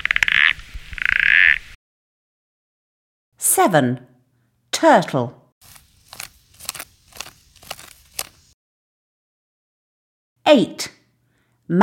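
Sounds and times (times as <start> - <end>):
frog croaking in rapid pulsed trains: 0.0 - 1.7
speech: 3.6 - 4.1, 4.8 - 5.4, 10.5 - 11.0, 11.7 - 11.8.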